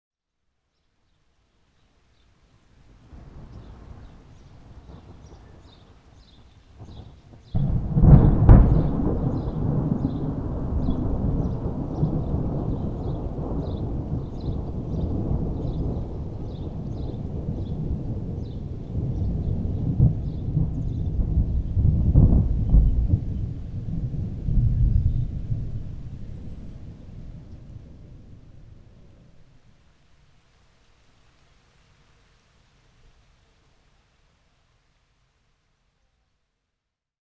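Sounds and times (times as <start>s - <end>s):
thunderstorm: 3.1s - 29.4s.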